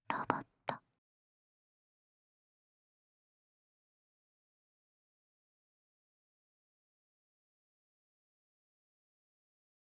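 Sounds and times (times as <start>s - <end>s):
robot whispering ASMR: 0.1s - 0.4s.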